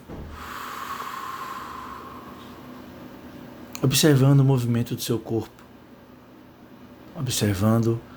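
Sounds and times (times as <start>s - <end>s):
long airy breath: 0.2s - 2.7s
speech: 3.8s - 5.6s, 7.3s - 8.1s.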